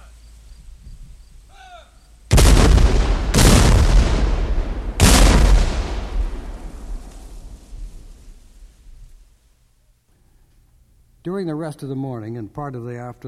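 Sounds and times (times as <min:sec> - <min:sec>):
rumbling echo of cannon shots: 0:02.3 - 0:09.2
field-piece cannon and howitzer shots: 0:02.3 - 0:09.3
speech: 0:11.3 - 0:13.2.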